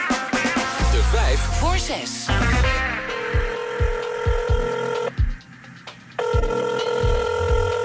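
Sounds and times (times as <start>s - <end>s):
low regular thumping beat: 0.0s - 7.8s
speech: 1.0s - 3.1s
telephone ringing: 3.4s - 5.2s, 6.2s - 7.8s.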